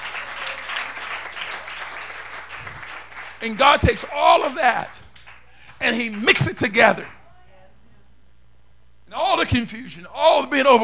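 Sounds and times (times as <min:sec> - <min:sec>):
audience clapping hands: 0:00.0 - 0:07.2
speech: 0:03.4 - 0:05.1, 0:05.8 - 0:07.2, 0:09.4 - 0:10.8.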